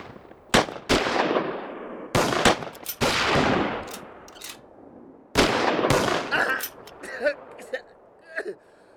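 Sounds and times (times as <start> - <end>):
gunfire: 0.0 - 4.6, 5.4 - 7.0.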